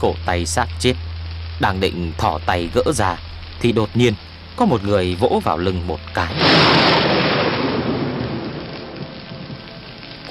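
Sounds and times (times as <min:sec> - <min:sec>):
speech: 0:00.0 - 0:07.2
heavy rain: 0:00.0 - 0:10.2
thunder rumbling in a lightning storm: 0:02.0 - 0:10.2.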